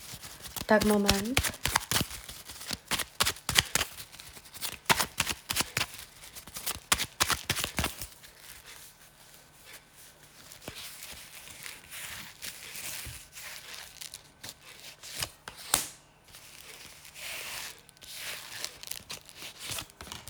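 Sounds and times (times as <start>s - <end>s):
tarot cards being shuffled: 0.0s - 8.8s, 13.1s - 17.6s, 18.2s - 20.2s
speech: 0.7s - 1.6s
tarot card taps and slides: 0.7s - 2.0s.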